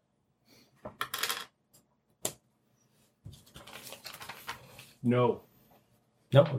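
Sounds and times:
dice rolling on a hard tabletop: 0:00.8 - 0:01.6
speech: 0:05.0 - 0:05.5, 0:06.3 - 0:06.5.

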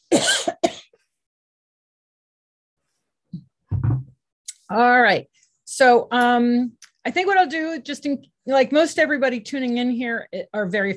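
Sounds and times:
person coughing: 0:00.0 - 0:01.0
person clearing throat: 0:00.1 - 0:00.9
speech: 0:04.7 - 0:10.9.

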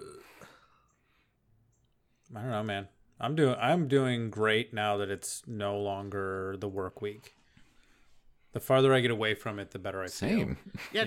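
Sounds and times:
short guttural burp: 0:00.0 - 0:00.6
speech: 0:02.4 - 0:07.4, 0:08.5 - 0:11.0.

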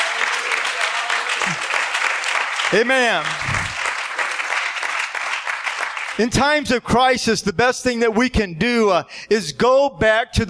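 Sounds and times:
church congregation clapping hands: 0:00.0 - 0:06.4
speech: 0:02.7 - 0:03.5, 0:06.2 - 0:10.4.

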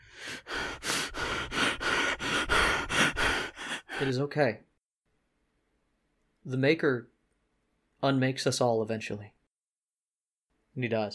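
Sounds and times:
man panting with heavy breathing: 0:00.0 - 0:04.3
speech: 0:04.0 - 0:04.7, 0:06.4 - 0:07.2, 0:08.0 - 0:09.4, 0:10.8 - 0:11.1.

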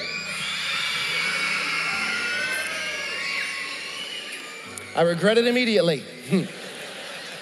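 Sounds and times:
large crowd of young children screaming together: 0:00.0 - 0:05.6
speech: 0:05.0 - 0:06.6
laughter: 0:06.2 - 0:07.4.

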